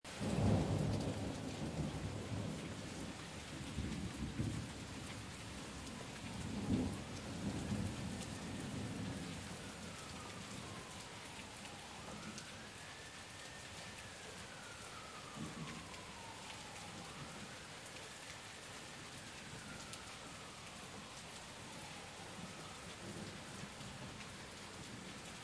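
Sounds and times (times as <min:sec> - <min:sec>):
heavy rain storm heard from under a balcony in daytime: 0:00.1 - 0:25.4
sirens: 0:00.1 - 0:25.4
heavy thunder: 0:00.2 - 0:05.2, 0:06.3 - 0:10.9, 0:15.2 - 0:16.3.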